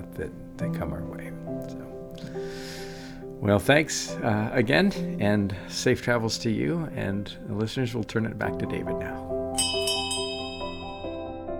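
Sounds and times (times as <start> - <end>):
speech: 0.1 - 2.8, 3.4 - 9.2
pub last call bell ringing: 9.6 - 11.5.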